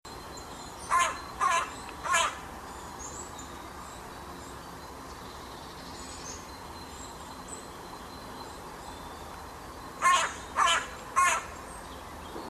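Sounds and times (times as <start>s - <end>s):
faint steady background hiss: 0.1s - 12.4s
carrion crow Corvus corone cawing harshly: 0.9s - 2.4s, 10.0s - 11.6s.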